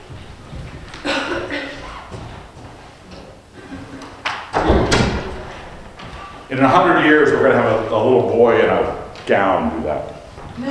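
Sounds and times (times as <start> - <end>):
door latch-like clunk: 4.5 - 5.8
door pushed shut: 4.5 - 6.0
speech: 6.5 - 10.6.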